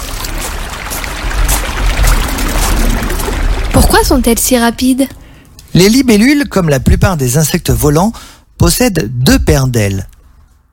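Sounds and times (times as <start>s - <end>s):
steady rushing river water: 0.0s - 4.0s
speech: 3.8s - 5.2s, 5.8s - 10.1s.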